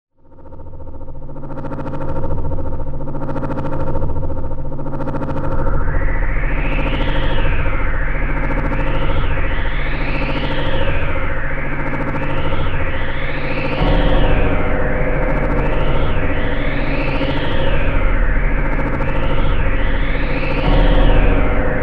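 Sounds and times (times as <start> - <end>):
dark ambient drone: 0.2 - 21.8
wind in a hallway: 0.7 - 21.8.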